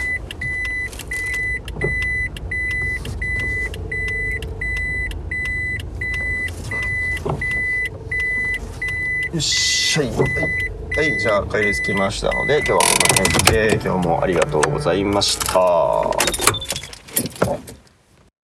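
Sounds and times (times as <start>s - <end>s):
car parking warning beeps: 0.0s - 14.6s
car engine hum while maneuvering into a parking space: 0.0s - 18.2s
speech: 9.4s - 16.5s.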